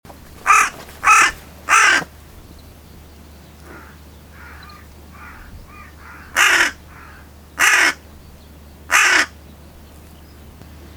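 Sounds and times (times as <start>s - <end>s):
carrion crow Corvus corone cawing harshly: 0.4s - 2.1s, 3.6s - 8.0s, 8.9s - 9.3s.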